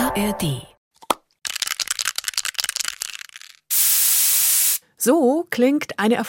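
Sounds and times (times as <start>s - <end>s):
speech: 0.2s - 0.7s, 5.1s - 6.2s
CFC-free aerosol spray can click: 1.1s - 4.8s
CFC-free aerosol spray can hissing while spraying: 3.7s - 4.8s.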